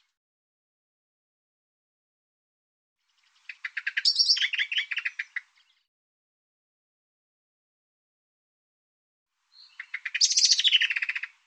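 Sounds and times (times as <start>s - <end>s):
bird song: 3.0s - 5.9s, 9.4s - 11.4s.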